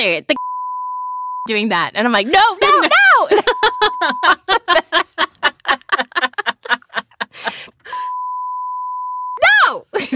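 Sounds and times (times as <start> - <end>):
speech: 0.0 - 0.5, 1.5 - 5.0
flat steady censor bleep tone: 0.4 - 1.5, 3.5 - 4.3, 8.1 - 9.4
rapid giggly laughter: 2.6 - 7.9.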